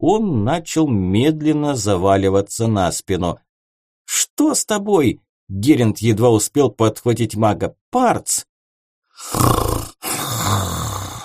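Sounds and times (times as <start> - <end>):
speech: 0.0 - 3.5, 4.1 - 8.5, 9.2 - 10.7
man snoring loudly: 9.2 - 11.2.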